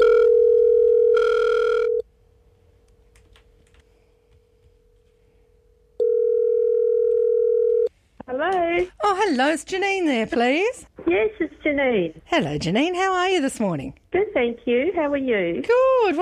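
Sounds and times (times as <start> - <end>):
telephone line ringing tone on a call: 0.0 - 2.0, 6.0 - 7.9
faint telephone line hum: 0.0 - 16.2
speech: 9.1 - 16.2.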